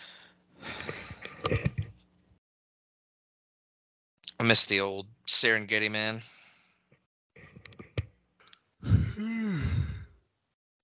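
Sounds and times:
speech: 0:04.4 - 0:06.3
person yawning: 0:08.8 - 0:10.2.

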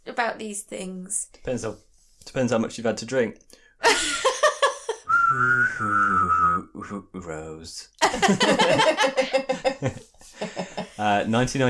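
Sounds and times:
speech: 0:00.2 - 0:04.1, 0:05.3 - 0:11.6
giggling laughter: 0:03.8 - 0:05.1, 0:08.0 - 0:11.0
steady sustained high-pitched whistle: 0:05.1 - 0:07.0.

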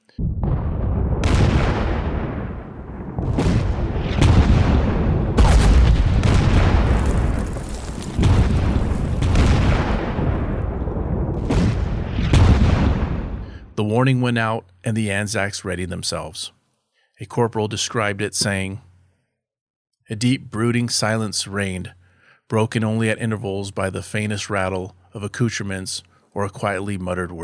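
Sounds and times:
constant loud low rumble: 0:00.0 - 0:13.5
artillery barrage booms: 0:00.1 - 0:13.8
speech: 0:14.0 - 0:16.6, 0:17.2 - 0:18.9, 0:20.1 - 0:27.4.

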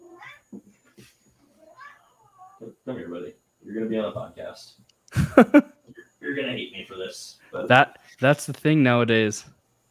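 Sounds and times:
male pet cat meowing loudly: 0:00.0 - 0:00.5
speech: 0:02.9 - 0:05.8, 0:06.4 - 0:09.6.

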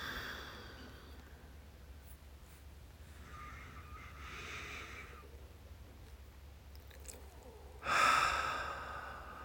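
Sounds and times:
slow deep breathing during a guided relaxation: 0:00.0 - 0:01.5, 0:03.0 - 0:05.4, 0:07.8 - 0:09.4.

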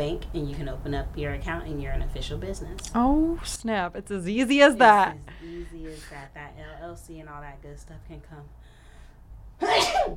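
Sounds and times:
speech: 0:00.0 - 0:08.8
sneeze: 0:09.6 - 0:10.1.

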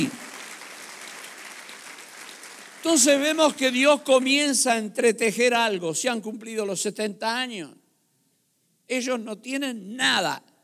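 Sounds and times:
audience applauding: 0:00.0 - 0:03.8
speech: 0:02.8 - 0:07.8, 0:08.9 - 0:10.5.

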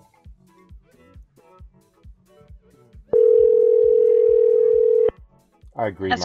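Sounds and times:
telephone dial tone while calling: 0:03.2 - 0:05.1.

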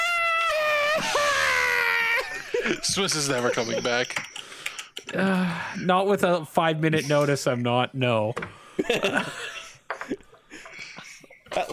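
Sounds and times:
person screaming: 0:00.0 - 0:02.3
speech: 0:02.6 - 0:04.3, 0:05.1 - 0:09.4.

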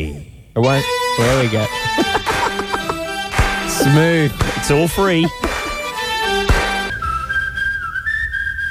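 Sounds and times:
speech: 0:00.6 - 0:02.3, 0:03.8 - 0:05.5
musical passage ending in a percussive burst: 0:00.6 - 0:08.6
laughter: 0:01.8 - 0:06.0
person whistling a tune: 0:06.8 - 0:08.6.

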